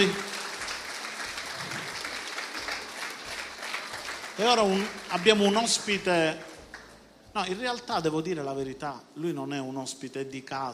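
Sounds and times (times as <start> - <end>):
speech: 0.0 - 0.2, 4.4 - 6.5, 7.4 - 10.7
congregation applauding steadily in a large room: 0.0 - 7.1.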